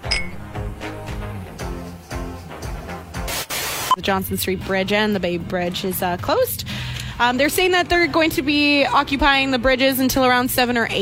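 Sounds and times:
champagne glasses clinking in a toast: 0.0 - 0.4
loud rhythmic music with regular beats and hissy bursts: 0.0 - 10.9
speech: 4.0 - 11.0.

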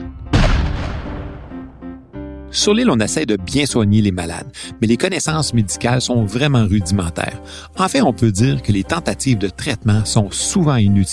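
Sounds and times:
cannon shot fired at a quarantine station to force ships to stop: 0.2 - 2.0
speech: 2.5 - 11.1.

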